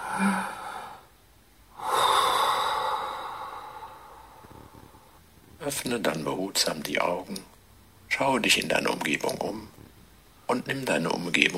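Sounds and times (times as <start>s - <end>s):
deep breath in and out: 0.0s - 5.2s
speech: 0.2s - 0.6s, 5.7s - 7.5s, 8.1s - 9.8s, 10.5s - 11.5s.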